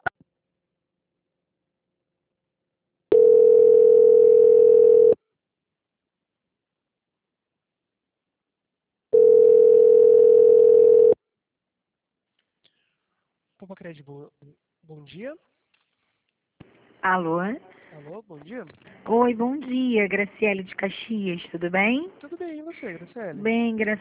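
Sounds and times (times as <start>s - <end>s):
telephone tones while a call is transferred to a bank: 3.1s - 5.2s, 9.2s - 11.2s
speech: 13.9s - 15.6s, 17.0s - 23.9s.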